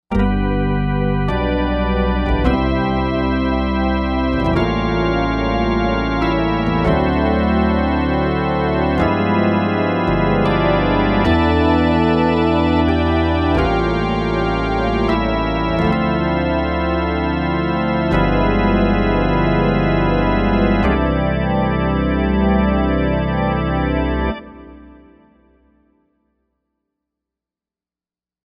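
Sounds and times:
gospel organ: 0.1s - 25.4s.

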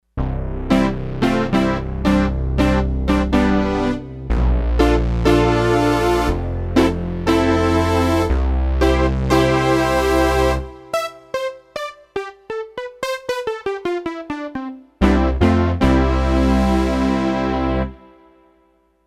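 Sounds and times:
Roland D-10 synthesizer velo-brass patch: 0.6s - 18.4s.

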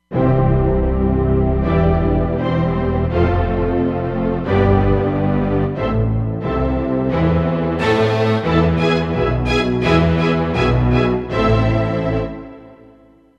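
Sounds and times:
bowed strings patch on a Roland Fantom XR: 0.2s - 12.7s.

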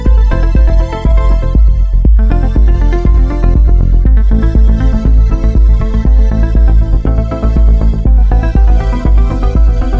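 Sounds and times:
easy drum beat: 0.1s - 6.8s, 7.6s - 9.9s.

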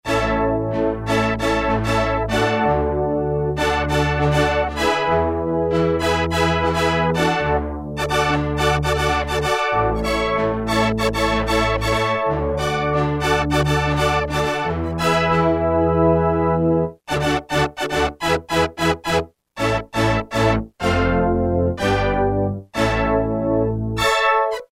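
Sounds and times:
synth brass on a Roland M-DC1: 0.0s - 24.7s.

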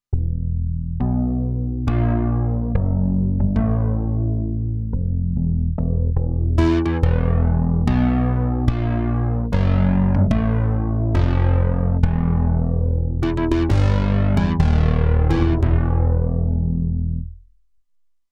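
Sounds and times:
Roland Alpha Juno-2 synthesizer mod bass: 0.0s - 17.4s.

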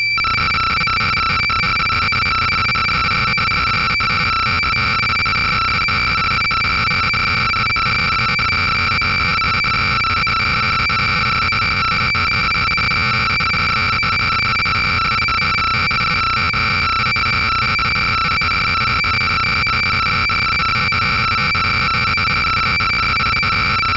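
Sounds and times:
Roland Juno-60 synthesizer factory programs: 0.1s - 23.9s.

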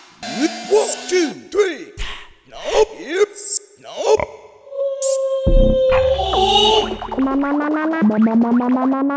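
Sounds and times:
Roland SC-880 factory rhythm set: 0.3s - 1.6s, 5.1s - 8.9s.

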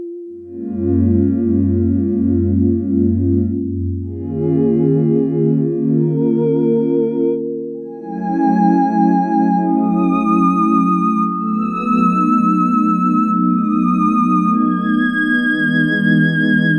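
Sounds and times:
Yamaha DX7 synthesizer voice patch: 0.4s - 16.6s.

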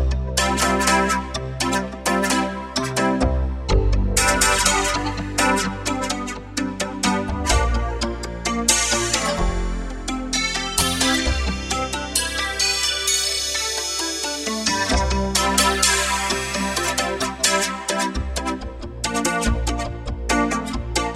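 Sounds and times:
Yamaha TG500 synthesizer sound: 0.1s - 21.1s.

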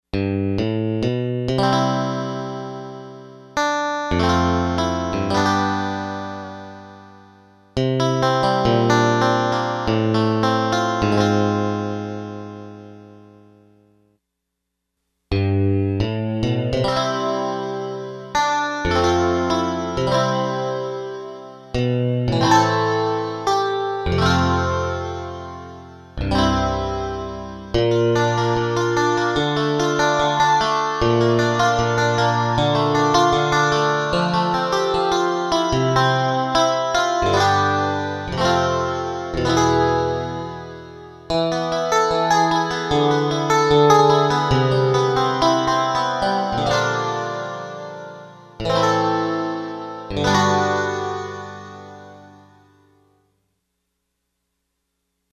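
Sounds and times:
wide chorus effect from Lexicon MPX 1: 0.1s - 14.0s, 15.3s - 53.0s.

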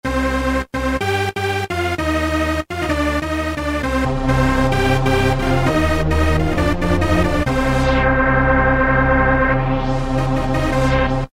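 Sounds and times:
synth dance strings: 0.9s - 11.3s.

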